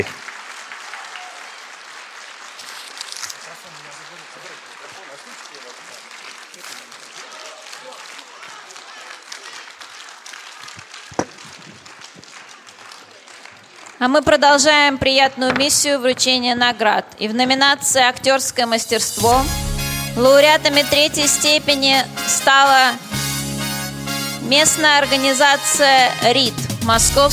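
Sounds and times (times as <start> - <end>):
speech: 0.0 - 0.2, 14.0 - 19.6, 20.2 - 23.1, 24.5 - 27.3
audience applause: 0.0 - 14.2.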